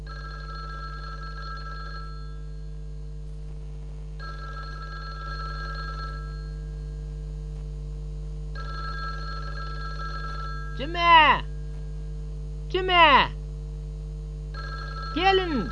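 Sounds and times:
telephone bell ringing with bright trilling tone: 0.0s - 2.6s, 4.2s - 6.9s, 8.6s - 11.5s, 14.5s - 15.7s
steady low hum: 0.0s - 15.7s
speech: 10.8s - 11.5s, 12.7s - 13.4s, 15.2s - 15.7s.

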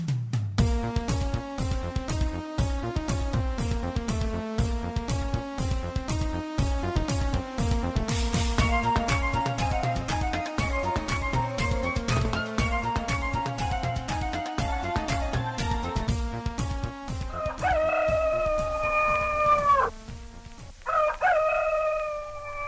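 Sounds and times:
rhythmic beat-driven music: 0.0s - 20.8s
rooster crowing cock-a-doodle-doo: 17.2s - 19.9s, 20.8s - 22.6s.

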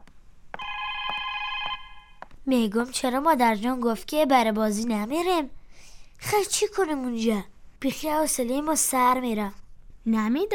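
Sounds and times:
telephone ringing at home: 0.6s - 2.2s
speech: 2.4s - 5.6s, 6.2s - 10.5s.

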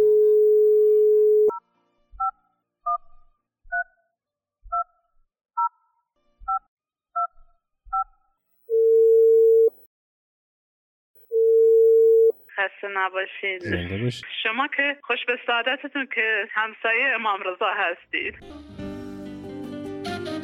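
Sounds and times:
telephone dial tone: 0.0s - 1.6s, 8.7s - 9.7s, 11.3s - 12.3s
telephone touch-tone beeps: 0.0s - 1.6s, 8.7s - 9.7s
speech: 12.8s - 18.8s.

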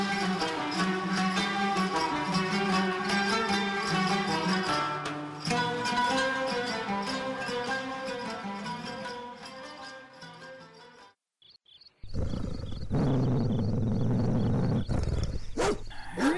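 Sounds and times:
short musical passage: 0.0s - 11.2s
dog barking and snarling loudly: 12.1s - 16.3s.

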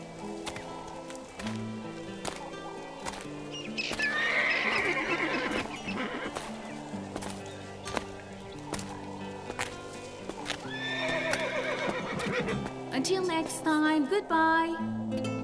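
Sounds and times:
horse hooves clip-clopping: 0.0s - 13.9s
wild horses on an island whinnying: 1.6s - 13.0s
speech: 13.4s - 15.3s.

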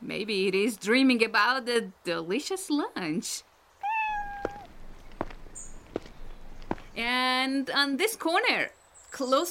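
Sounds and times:
speech: 0.2s - 3.5s, 7.0s - 9.4s
cat meowing: 3.8s - 4.7s
soft evenly spaced taps: 4.4s - 7.0s.

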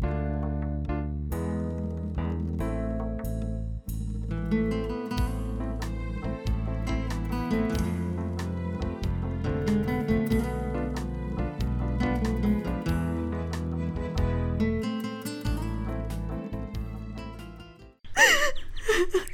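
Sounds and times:
music: 0.0s - 18.0s
woman crying loudly: 18.1s - 19.3s.

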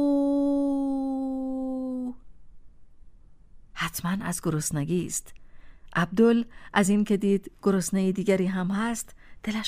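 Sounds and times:
human voice imitating a wolf's howl: 0.0s - 2.2s
speech: 3.9s - 5.4s, 6.0s - 9.6s.

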